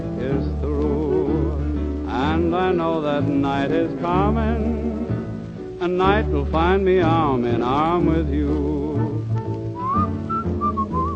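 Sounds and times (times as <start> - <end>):
soft musical accompaniment: 0.0 - 11.1
speech: 2.5 - 5.0, 5.8 - 8.9
person whistling a tune: 9.7 - 11.1.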